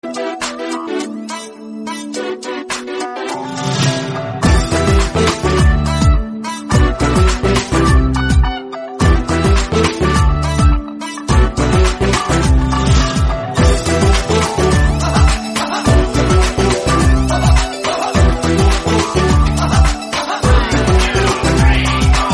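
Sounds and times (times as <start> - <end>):
background dance music ringtone: 0.0 - 22.3.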